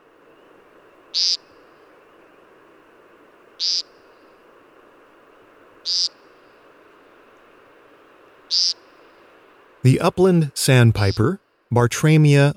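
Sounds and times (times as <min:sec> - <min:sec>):
male American woodcock Scolopax minor buzzy nasal display calls: 0:00.0 - 0:09.8
steady hiss of evening ambience: 0:00.0 - 0:12.5
speech: 0:01.2 - 0:01.4, 0:09.8 - 0:12.5.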